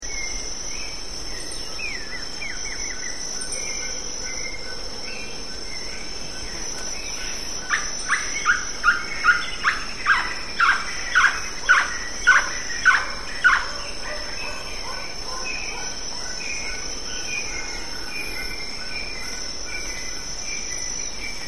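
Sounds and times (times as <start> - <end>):
Ferruginous Pygmy-Owl Glaucidium brasilianum calling: 7.7 - 14.7.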